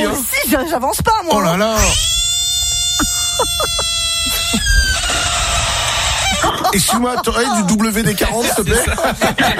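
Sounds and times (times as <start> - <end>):
speech: 0.0 - 2.1, 3.4 - 5.2, 6.4 - 9.5
frog croaking: 1.8 - 6.8
laughter: 3.0 - 5.6, 6.2 - 9.5.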